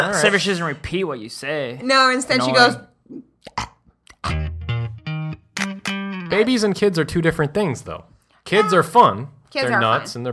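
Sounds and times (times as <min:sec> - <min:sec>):
speech: 0:00.0 - 0:03.7, 0:06.3 - 0:10.3
person imitating a baby burping: 0:03.1 - 0:04.6.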